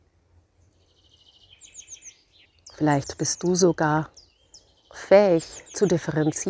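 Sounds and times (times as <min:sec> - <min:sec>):
birds chirping and trilling in a forest: 0:00.6 - 0:06.4
speech: 0:02.8 - 0:04.2, 0:05.1 - 0:06.4.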